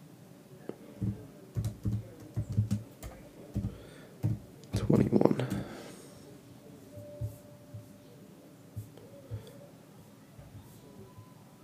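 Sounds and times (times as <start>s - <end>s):
clicky keystrokes on a computer keyboard: 1.0s - 5.7s.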